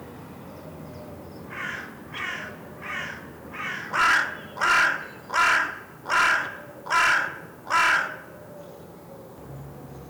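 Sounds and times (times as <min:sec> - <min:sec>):
carrion crow Corvus corone cawing: 0:01.5 - 0:08.3.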